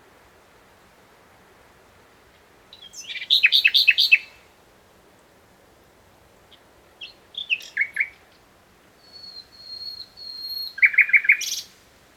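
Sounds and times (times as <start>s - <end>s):
common nightingale Luscinia megarhynchos singing: 2.7s - 4.4s, 7.0s - 8.2s, 9.0s - 11.8s.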